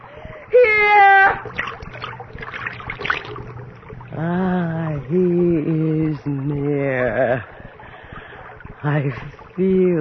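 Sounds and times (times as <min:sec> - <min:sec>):
moaning wail: 0:00.5 - 0:01.5
blood being poured and splashing: 0:01.4 - 0:09.9
speech: 0:08.8 - 0:09.9.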